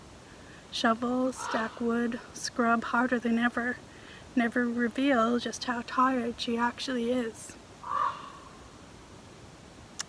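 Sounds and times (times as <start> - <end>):
speech: 0.7 - 7.6
raven calling: 1.3 - 2.2, 7.8 - 8.8.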